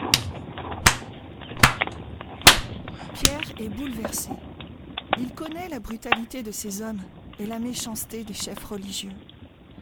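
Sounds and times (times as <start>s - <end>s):
sharp cracking blows struck at a blindfolded man: 0.1s - 3.4s
speech: 3.2s - 4.5s, 5.1s - 9.3s.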